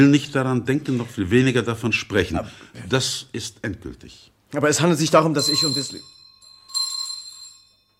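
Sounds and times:
speech: 0.0s - 6.2s
front door bell ringing with a bright metallic strike: 5.3s - 7.9s.

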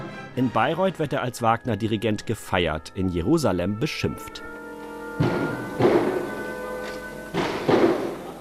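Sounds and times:
speech: 0.4s - 4.5s
heavy doors slamming shut in a concert hall in Israel: 5.2s - 8.3s.

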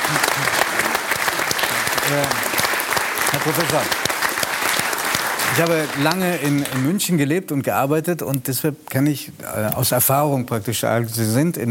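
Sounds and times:
audience applause: 0.0s - 7.1s
speech: 2.1s - 2.5s, 3.3s - 4.1s, 5.5s - 11.6s.

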